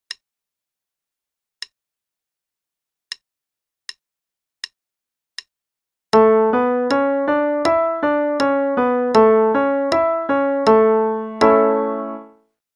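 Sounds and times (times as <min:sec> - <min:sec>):
five-finger pattern in A major: 0:06.2 - 0:12.4.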